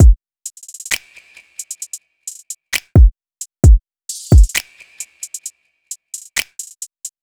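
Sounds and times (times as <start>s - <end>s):
drum loop: 0.0s - 1.0s, 2.3s - 5.4s, 6.2s - 7.2s.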